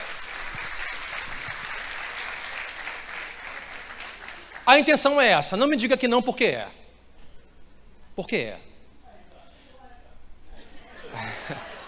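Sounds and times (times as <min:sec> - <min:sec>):
audience applauding: 0:00.0 - 0:05.2
speech: 0:04.7 - 0:06.8, 0:08.2 - 0:08.7
laughter: 0:10.5 - 0:11.8.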